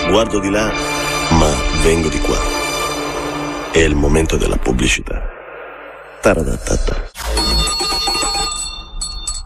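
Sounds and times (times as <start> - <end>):
speech: 0.1 - 2.6, 3.8 - 5.3, 6.2 - 7.1
small bell ringing: 7.6 - 9.4.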